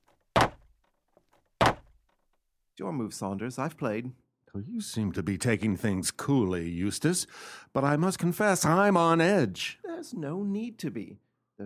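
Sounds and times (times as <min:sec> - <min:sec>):
wooden window shutters banging shut: 0:00.0 - 0:00.7, 0:01.6 - 0:02.0
speech: 0:02.8 - 0:11.6.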